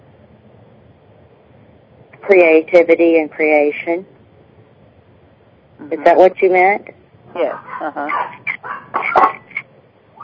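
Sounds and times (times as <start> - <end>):
speech: 2.2 - 4.1, 5.9 - 8.4
dogs barking: 7.5 - 9.4.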